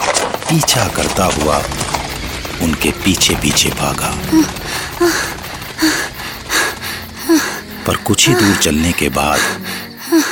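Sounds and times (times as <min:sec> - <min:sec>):
dense noisy background: 0:00.0 - 0:08.1
white horses' hooves clip-clopping while ridden away from a lake: 0:00.0 - 0:08.2
speech: 0:00.5 - 0:01.9, 0:02.6 - 0:06.1, 0:07.9 - 0:10.3.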